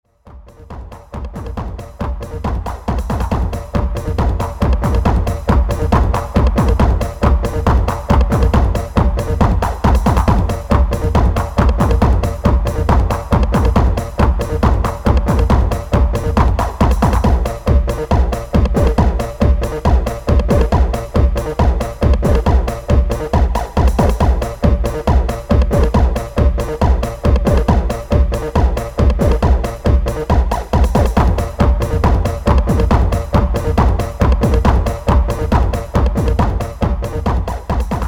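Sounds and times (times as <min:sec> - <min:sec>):
beatbox ticks: 0:00.3 - 0:38.0.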